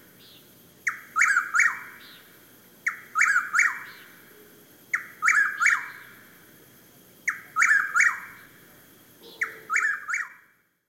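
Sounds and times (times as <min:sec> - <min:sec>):
steady background hiss: 0:00.0 - 0:10.8
Chuck-will's-widow singing whistled rolling phrases: 0:00.2 - 0:04.2, 0:04.9 - 0:06.2, 0:07.2 - 0:08.5, 0:09.3 - 0:10.5.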